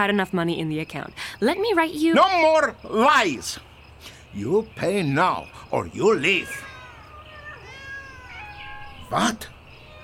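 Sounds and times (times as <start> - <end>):
speech: 0.0 - 6.7, 9.1 - 9.6
several cats meowing and yowling: 5.8 - 10.0.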